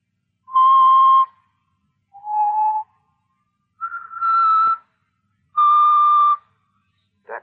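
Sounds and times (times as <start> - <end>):
person whistling a slow tune: 0.5 - 1.4, 2.2 - 2.9, 3.8 - 4.9, 5.6 - 6.5.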